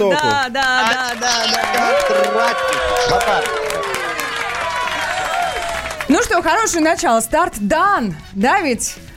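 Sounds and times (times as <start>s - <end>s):
speech: 0.0s - 3.7s, 6.1s - 9.1s
crowd applauding: 0.2s - 6.7s
cheering voices: 1.2s - 6.2s.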